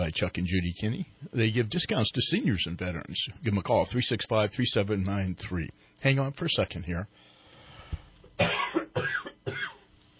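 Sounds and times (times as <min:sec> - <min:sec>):
speech: 0:00.1 - 0:07.3
harsh coughs: 0:08.4 - 0:09.9.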